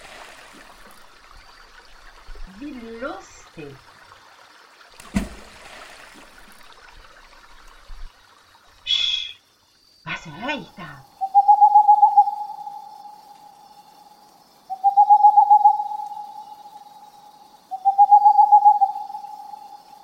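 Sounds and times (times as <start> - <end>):
splashing noises: 0.0 - 9.0
speech: 2.6 - 3.9, 10.3 - 11.1
owl hooting: 8.9 - 9.4, 10.1 - 14.1, 14.7 - 19.8.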